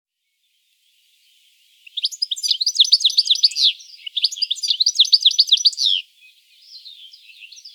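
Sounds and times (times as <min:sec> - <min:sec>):
European goldfinch dense tinkling twitter: 0:01.8 - 0:07.7.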